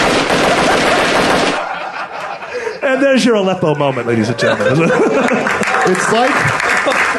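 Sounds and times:
AK-47 automatic gunfire sound effect: 0.0 - 1.7
laughter: 0.4 - 7.1
speech: 2.9 - 7.1.

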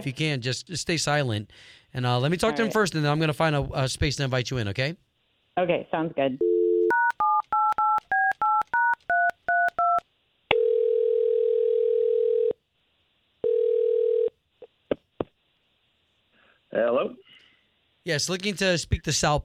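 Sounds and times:
speech: 0.0 - 5.0, 5.6 - 6.5, 18.0 - 19.4
telephone ringing tones: 6.4 - 12.6, 13.4 - 14.4.

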